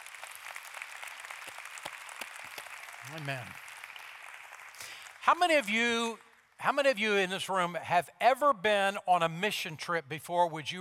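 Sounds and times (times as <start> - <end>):
room full of people applauding: 0.0 - 6.5
speech: 3.1 - 3.6, 5.2 - 10.7.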